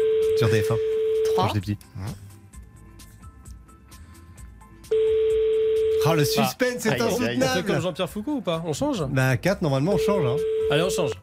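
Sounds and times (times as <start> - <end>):
telephone ringback tone during a call: 0.0 - 1.5, 4.9 - 6.4, 10.0 - 11.1
speech: 0.4 - 2.2, 6.0 - 11.2.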